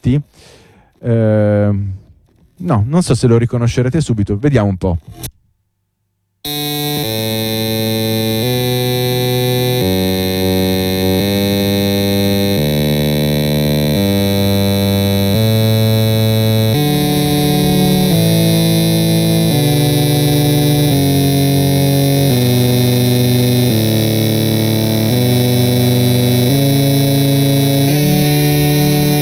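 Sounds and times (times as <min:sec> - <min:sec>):
speech: 0:00.0 - 0:02.0, 0:02.6 - 0:05.4
electrode-implanted cicada buzzing a slow classical melody: 0:06.5 - 0:29.1.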